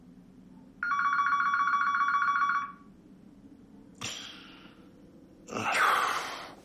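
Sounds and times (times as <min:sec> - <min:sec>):
electronic telephone ring for a wake-up call: 0:00.8 - 0:02.9.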